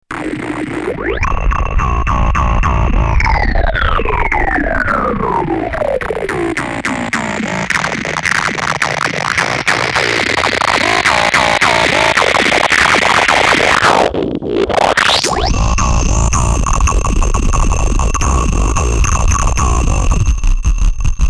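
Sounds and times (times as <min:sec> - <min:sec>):
distorted phased wavetable synth through a Moog filter: 0:00.1 - 0:21.2.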